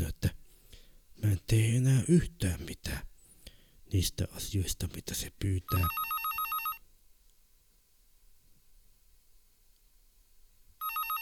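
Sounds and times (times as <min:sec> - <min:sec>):
faint hiss: 0:00.0 - 0:11.2
speech: 0:01.2 - 0:03.1, 0:03.9 - 0:06.1
telephone ringing with rapid trilling electronic tones: 0:05.7 - 0:06.8, 0:10.8 - 0:11.2.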